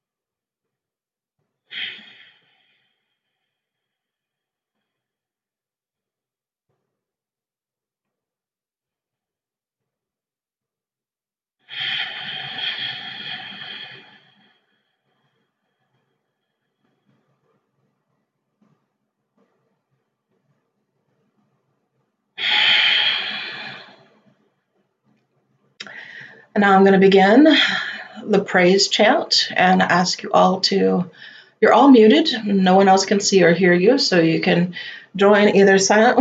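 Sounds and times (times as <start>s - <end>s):
long slow deep breaths: 1.7s - 4.0s, 11.7s - 16.2s, 22.4s - 24.4s, 25.8s - 26.5s, 31.1s - 31.6s, 34.8s - 35.2s
speech: 26.6s - 36.2s.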